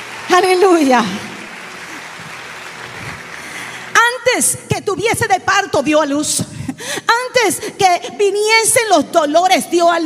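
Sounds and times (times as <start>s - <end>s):
applause at a religious service: 0.0s - 4.0s
speech: 0.4s - 1.3s, 4.3s - 10.0s.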